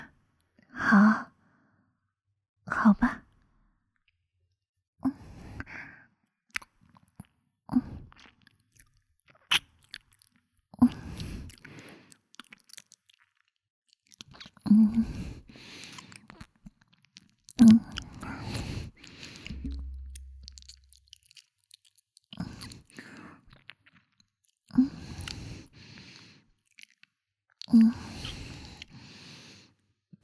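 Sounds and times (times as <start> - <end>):
speech: 0.9 - 1.3
wet chewing and mouth sounds while lotus seed soup is fed mouth to mouth: 8.1 - 29.0.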